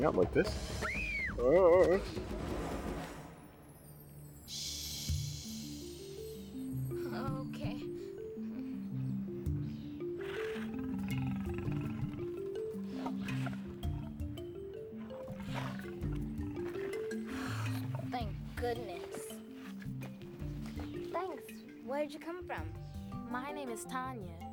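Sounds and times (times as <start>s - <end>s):
speech: 0.0s - 2.6s
steady rhythmic low musical backing: 0.0s - 24.5s
sick lion growling, snarling and roaring: 10.2s - 14.2s, 15.0s - 19.2s.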